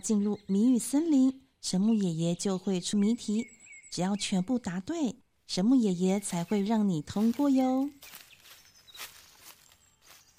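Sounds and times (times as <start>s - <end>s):
speech: 0.0s - 8.2s
footsteps approaching: 6.2s - 10.3s.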